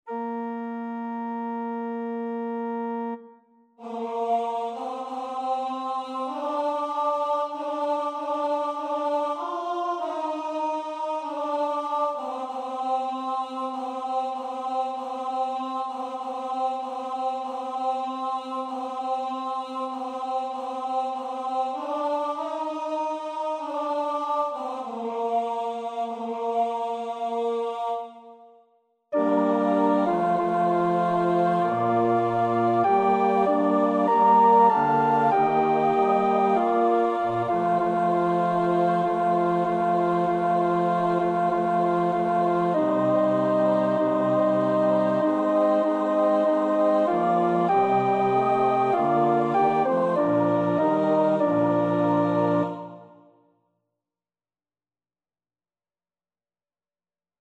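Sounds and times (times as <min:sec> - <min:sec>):
alto choir part practice: 0:00.0 - 0:28.4, 0:29.2 - 0:53.3.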